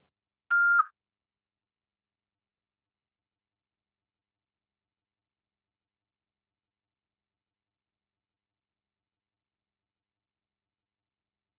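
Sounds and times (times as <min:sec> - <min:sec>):
voicemail beep: 0:00.5 - 0:00.9.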